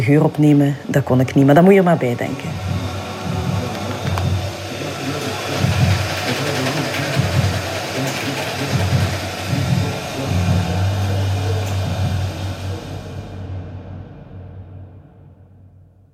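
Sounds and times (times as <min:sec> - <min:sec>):
speech: 0:00.0 - 0:02.7
coffee grinder grinding coffee beans: 0:02.6 - 0:12.4.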